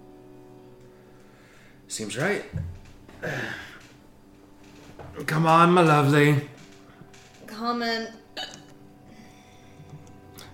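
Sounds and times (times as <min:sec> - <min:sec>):
speech: 0:01.9 - 0:03.7, 0:05.2 - 0:06.5, 0:07.6 - 0:08.2
hiccup: 0:08.4 - 0:08.7.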